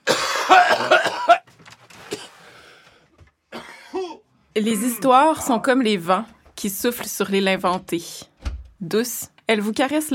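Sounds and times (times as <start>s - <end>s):
people coughing: 0.0s - 1.4s, 3.5s - 5.7s
speech: 0.5s - 1.1s, 4.6s - 10.1s
throat noises: 4.7s - 6.0s.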